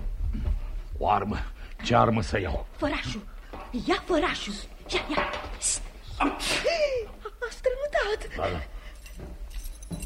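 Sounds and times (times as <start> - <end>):
speech: 1.0 - 8.7
bunch of keys jangling at a desk drawer: 8.8 - 10.0.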